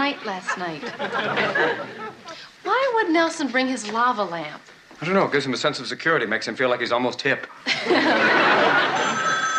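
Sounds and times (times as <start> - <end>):
speech: 0.1 - 9.3
laughter: 0.2 - 2.4, 7.6 - 9.4
telephone ringing: 8.6 - 9.5.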